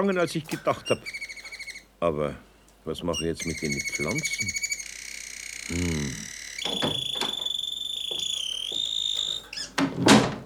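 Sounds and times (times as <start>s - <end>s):
speech: 0.0s - 1.3s, 2.0s - 4.6s, 5.7s - 5.9s
high steady electronic tone: 3.2s - 9.5s
unlocked door opening: 6.6s - 10.4s.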